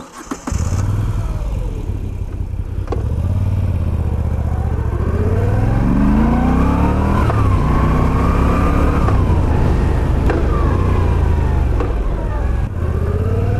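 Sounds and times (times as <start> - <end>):
Moto Guzzi V9 Bobber motorcycle engine revving: 0.0 - 13.5.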